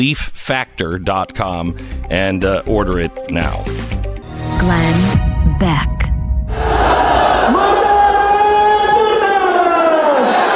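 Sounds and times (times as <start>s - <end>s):
speech: 0.0s - 3.9s, 4.5s - 6.0s
angry mob in Pakistan shouting at a protest: 6.5s - 10.5s.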